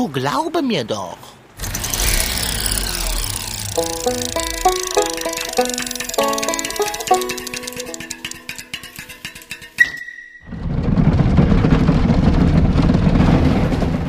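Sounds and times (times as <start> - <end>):
speech: 0.0 - 1.4, 3.8 - 4.8
bobsleigh speeding down a twisting track: 2.9 - 14.0
tonal music: 3.0 - 9.9.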